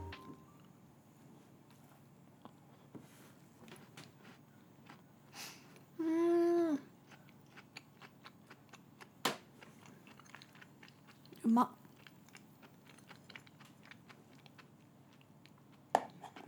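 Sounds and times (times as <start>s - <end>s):
chewing a chocolate old-fashioned donut: 3.7s - 5.0s, 6.9s - 16.4s
speech: 11.5s - 11.8s.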